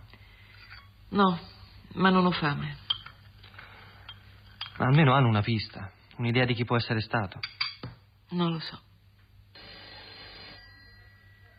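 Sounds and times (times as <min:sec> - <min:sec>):
low steady hum: 0:00.0 - 0:11.5
speech: 0:01.1 - 0:02.8, 0:04.8 - 0:07.6, 0:08.3 - 0:08.9
telephone ringing in a home: 0:09.6 - 0:11.5.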